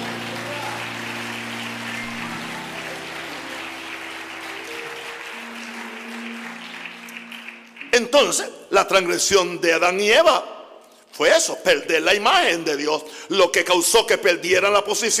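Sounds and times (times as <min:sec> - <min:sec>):
audience applauding loudly in praise of Jesus: 0:00.0 - 0:08.4
sustained low keyboard chords: 0:00.0 - 0:08.4
speech: 0:08.0 - 0:10.6, 0:11.2 - 0:15.1.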